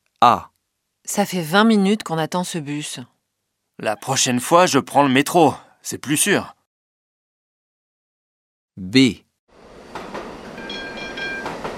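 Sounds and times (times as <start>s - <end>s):
speech: 0.2s - 0.5s, 1.1s - 3.1s, 3.8s - 6.6s, 8.8s - 9.2s
tram arriving on its rails: 9.6s - 11.7s.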